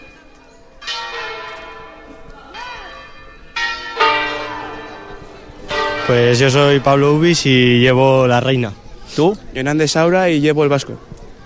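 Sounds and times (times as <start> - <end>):
church bells ringing: 0.0 - 8.6
speech: 6.1 - 11.1.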